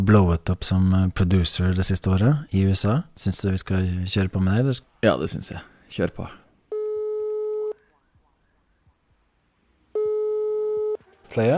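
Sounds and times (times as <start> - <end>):
speech: 0.0 - 6.4, 11.3 - 11.5
faint noise: 0.0 - 11.5
outgoing phone call ringback tone: 6.7 - 7.8, 10.0 - 11.1.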